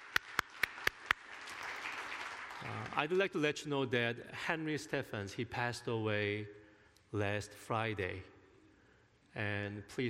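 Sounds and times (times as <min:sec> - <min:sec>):
audience applause for a performing musical group: 0:00.0 - 0:03.1
speech: 0:02.6 - 0:08.3, 0:09.3 - 0:10.0.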